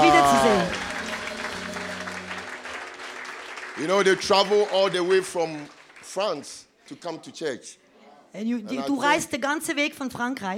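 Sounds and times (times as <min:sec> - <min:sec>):
faint sustained musical tone: 0:00.0 - 0:02.9
crowd applauding: 0:00.0 - 0:07.1
speech: 0:03.8 - 0:10.5.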